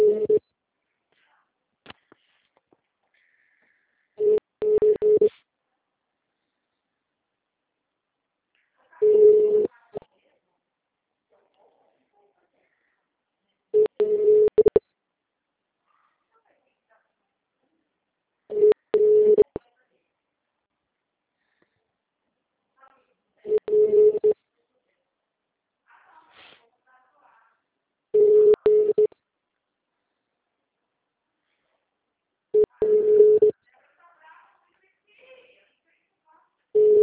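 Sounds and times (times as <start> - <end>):
telephone ringback tone while calling a city hall office: 0.0 - 0.4, 4.2 - 5.3, 9.0 - 9.7, 13.8 - 14.8, 18.5 - 19.6, 23.5 - 24.4, 28.2 - 29.1, 32.6 - 33.5, 36.8 - 37.0.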